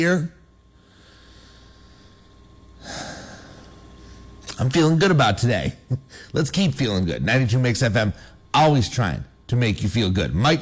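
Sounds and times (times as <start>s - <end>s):
speech: 0.0s - 0.4s, 4.6s - 10.5s
deep breath drawn in and let out: 0.7s - 4.4s.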